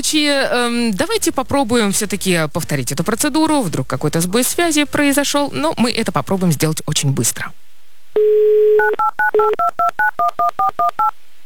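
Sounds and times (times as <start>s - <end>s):
speech: 0.0s - 11.3s
loud short two-note touch-tone phone dialing beeps: 8.2s - 11.1s.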